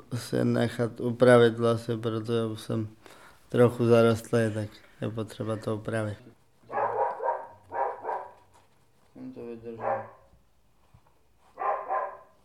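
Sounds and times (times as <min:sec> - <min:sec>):
speech: 0:00.1 - 0:06.4
mixed-breed dog barking: 0:06.7 - 0:08.4, 0:09.7 - 0:10.3, 0:11.6 - 0:12.4.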